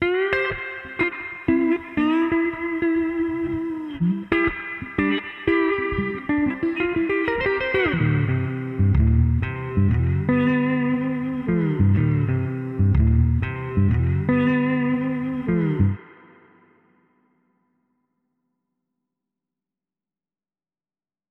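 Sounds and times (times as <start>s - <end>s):
mono slide guitar: 0.0s - 16.8s.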